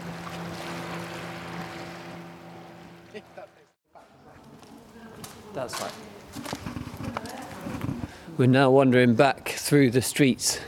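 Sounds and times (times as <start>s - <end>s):
small motorboat engine droning while passing on water: 0.0s - 3.8s
soft water: 0.0s - 5.1s
speech: 3.2s - 3.7s, 5.6s - 6.5s, 8.4s - 10.6s.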